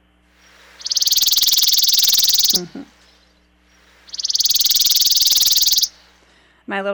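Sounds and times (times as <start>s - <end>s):
chipping sparrow trill: 0.5s - 2.6s, 3.9s - 6.0s
speech: 2.6s - 3.0s, 6.7s - 6.9s.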